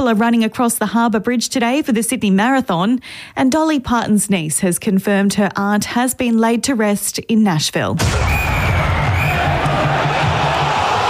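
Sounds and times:
speech: 0.0 - 8.9
huge stadium crowd cheering at an AFL football match: 8.0 - 11.0.

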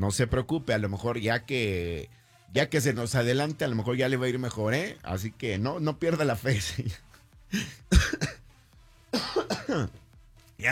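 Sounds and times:
speech: 0.0 - 8.3, 9.7 - 10.0
person with flu coughing harshly: 7.5 - 8.4, 9.2 - 10.0.

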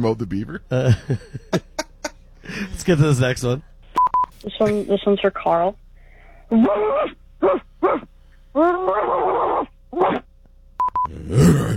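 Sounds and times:
speech: 0.0 - 1.7, 2.5 - 3.7, 4.4 - 5.8, 6.5 - 10.3, 11.1 - 11.7
laughter: 0.7 - 2.9
person imitating dog barking and yelping: 6.5 - 10.3, 11.1 - 11.7
electronic beeps: 10.8 - 11.1.

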